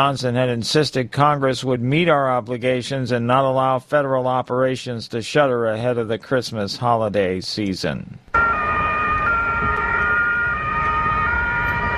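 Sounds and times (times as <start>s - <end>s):
speech: 0.0s - 8.4s
ambulance siren at a Christmas market in Germany: 8.3s - 11.9s
constant rumble of road traffic: 8.4s - 11.9s.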